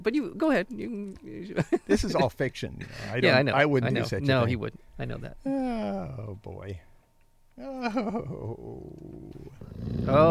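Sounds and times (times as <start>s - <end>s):
speech: 0.0s - 6.9s, 7.6s - 10.2s
dog growling: 8.1s - 10.2s.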